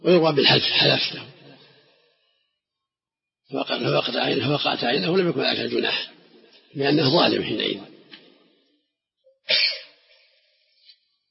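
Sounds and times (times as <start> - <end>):
speech: 0.0 - 1.4, 3.5 - 7.9
sneeze: 9.4 - 10.3.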